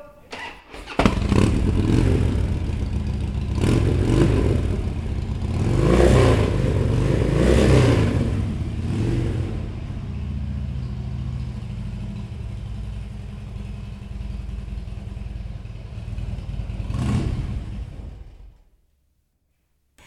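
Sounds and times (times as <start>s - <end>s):
Harley motorcycle engine starting and revving: 0.3s - 18.7s.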